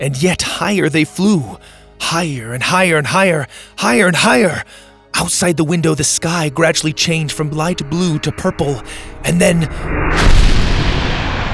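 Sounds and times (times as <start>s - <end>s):
speech: 0.0s - 10.6s
rocket roaring as it breaks through the sky: 9.8s - 11.5s.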